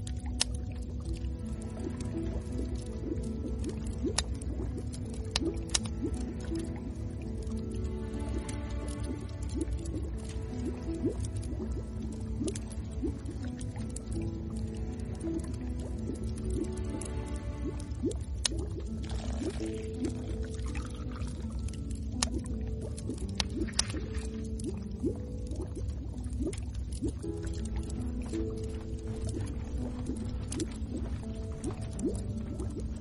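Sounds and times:
bubbling pot simmering: 0.0s - 33.0s
firewood popping and crackling: 0.0s - 33.0s.

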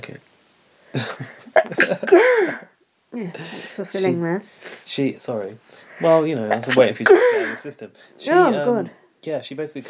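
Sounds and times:
speech: 0.9s - 1.4s, 3.2s - 9.8s
loud sneeze with breathy bursts and voiced exhale: 1.8s - 2.7s, 7.0s - 7.7s.

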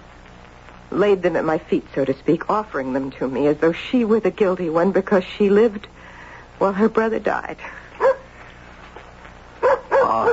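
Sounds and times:
faint noise: 0.0s - 10.3s
speech: 0.9s - 7.8s
dog barking at the door: 8.0s - 8.3s, 9.6s - 10.3s.

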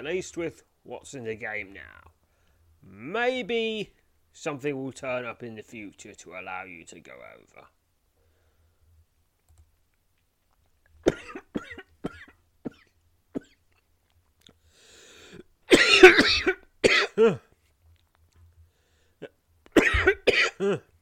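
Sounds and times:
speech: 0.0s - 2.2s, 2.8s - 7.8s, 16.0s - 17.5s, 20.0s - 20.9s
person coughing harshly as a side effect of taking potions: 11.1s - 13.6s, 15.7s - 17.5s, 19.2s - 20.9s.

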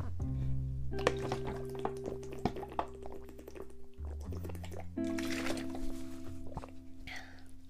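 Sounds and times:
sparkling water being poured: 1.0s - 6.7s
person sipping sparkling water: 1.0s - 7.5s.

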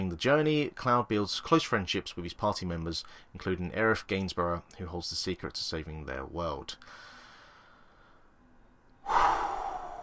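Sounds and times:
speech: 0.2s - 7.1s
person taking a deep breath: 6.8s - 8.4s, 9.0s - 10.0s.

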